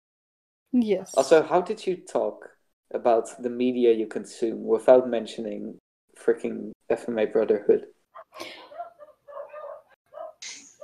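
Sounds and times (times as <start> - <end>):
speech: 0.7 - 8.6
dog barking: 8.2 - 10.8.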